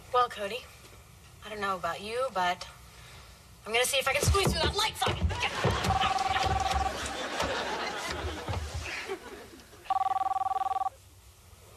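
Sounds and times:
speech: 0.2 - 0.8, 1.4 - 2.8, 3.6 - 6.0
laughter: 5.3 - 9.9
cell phone ringing in electronic trilling bursts: 5.8 - 7.0, 9.9 - 11.0.

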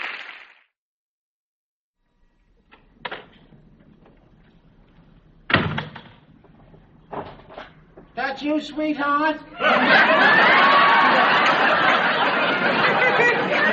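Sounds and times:
door slamming shut: 5.5 - 6.3
speech: 8.4 - 10.6
laughter: 9.5 - 13.7.

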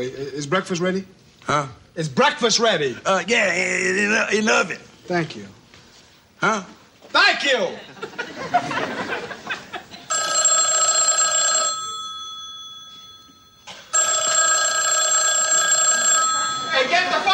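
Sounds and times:
speech: 0.0 - 5.6, 6.4 - 9.0
laughter: 7.7 - 10.1, 16.3 - 17.3
telephone bell ringing: 10.1 - 17.3.

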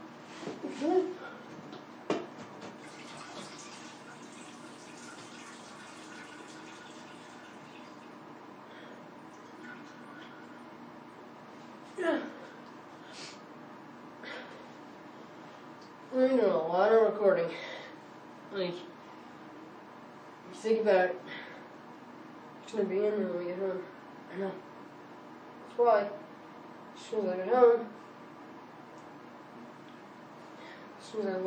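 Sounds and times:
bathroom exhaust fan running: 0.0 - 31.4
speech: 17.2 - 17.7, 22.7 - 24.6, 25.8 - 26.2, 27.1 - 28.0, 31.2 - 31.4.

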